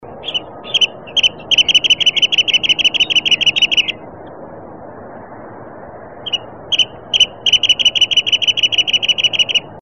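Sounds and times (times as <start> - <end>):
wrentit calling: 0.0 - 4.1, 6.2 - 9.8.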